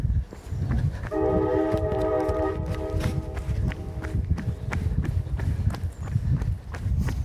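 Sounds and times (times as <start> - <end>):
running footsteps pounding: 0.0 - 7.2
train horn blaring a sustained harmonic chord: 1.1 - 4.2
rumble of a passing train: 1.1 - 5.7.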